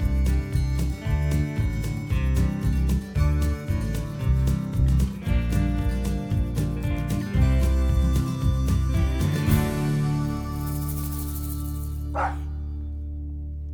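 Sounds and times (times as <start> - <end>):
sustained musical tones: 0.0 - 13.7
dog barking: 12.1 - 12.5.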